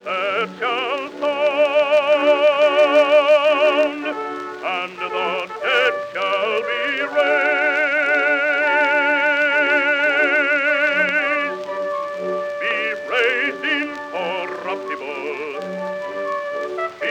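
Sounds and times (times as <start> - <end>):
trumpet: 0.0 - 17.1.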